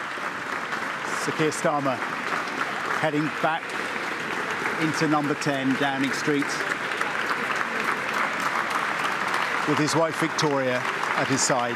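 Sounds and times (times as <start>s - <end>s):
staff applauding on the steps outside Downing Street: 0.0s - 11.7s
speech: 1.2s - 2.2s, 3.0s - 3.8s, 4.8s - 6.7s, 9.7s - 11.7s.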